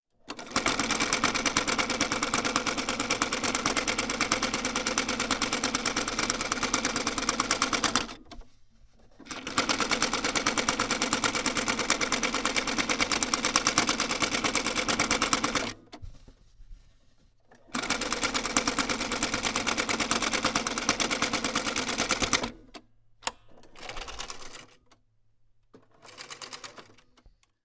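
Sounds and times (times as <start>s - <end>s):
sewing machine: 0.2s - 8.4s, 9.2s - 15.9s, 17.5s - 22.8s, 23.6s - 24.8s, 25.8s - 27.2s.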